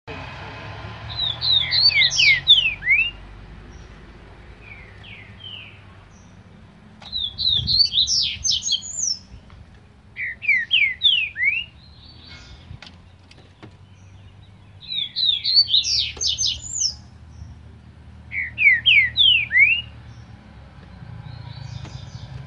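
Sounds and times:
green-winged saltator singing slurred whistles: 1.1 - 3.2, 7.1 - 9.3, 10.2 - 12.3, 14.8 - 17.0, 18.3 - 20.0.

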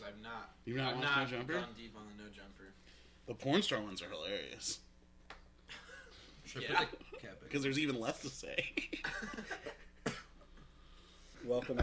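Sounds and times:
speech: 0.1 - 4.9, 6.5 - 9.8, 11.4 - 11.8
laughter: 8.2 - 10.4
person coughing: 10.0 - 10.4.

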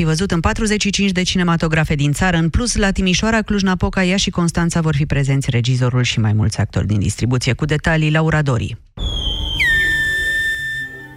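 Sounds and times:
speech: 0.0 - 8.9
whistled language of La Gomera island locals: 9.0 - 11.1.

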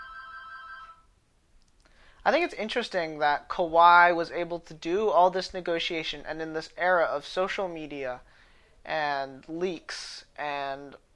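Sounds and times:
telephone ringing with an electronic trill: 0.0 - 1.1
speech: 2.2 - 11.1.

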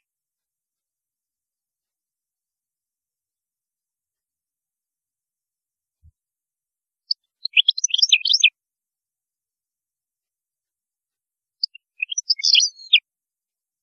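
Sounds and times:
European goldfinch jangling twitter song: 7.1 - 8.5, 11.6 - 13.0.

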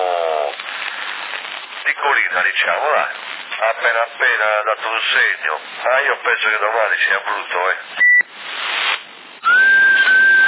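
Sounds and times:
hissy band-limited CB radio static: 0.0 - 9.1
speech: 2.0 - 8.0
whistle over a CB radio in Sassari: 9.4 - 10.4.

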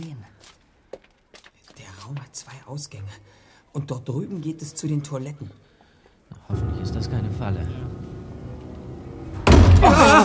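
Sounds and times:
speech: 2.1 - 5.7, 6.5 - 8.0
door slamming shut with a heavy bang: 6.5 - 10.2.

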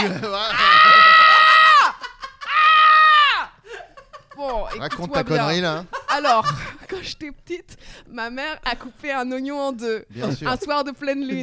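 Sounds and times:
speech: 0.0 - 0.6, 4.7 - 11.4
laughter: 0.0 - 7.0
person screaming: 0.5 - 3.6.

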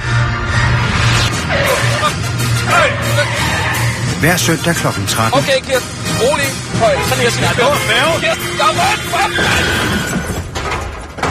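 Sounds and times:
road and engine noise: 0.0 - 10.5
car tire squeals while braking: 1.4 - 4.2, 6.8 - 10.5
speech: 4.2 - 10.2.

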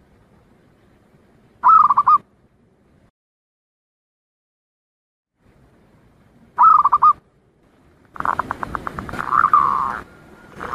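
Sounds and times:
zebra dove cooing in quick mellow notes: 1.6 - 2.2, 6.6 - 7.2, 8.2 - 10.7.

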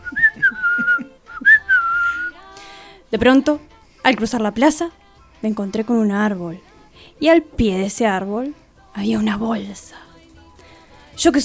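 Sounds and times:
person whistling a melodic tune while walking along a street: 0.0 - 2.4
speech: 3.1 - 10.0, 11.2 - 11.4.

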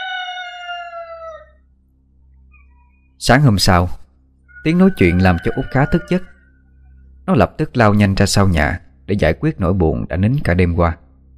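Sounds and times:
rooster crowing outside a house before morning: 0.0 - 1.7, 4.5 - 7.0
speech: 3.2 - 4.0, 4.6 - 6.3, 7.3 - 11.0.

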